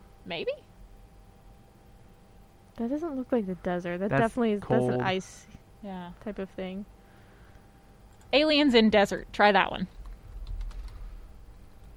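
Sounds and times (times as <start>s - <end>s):
low hum: 0.0s - 11.9s
speech: 0.2s - 0.7s, 2.8s - 7.0s, 8.3s - 10.0s
fast typing on a computer keyboard: 8.1s - 8.3s, 9.9s - 11.9s.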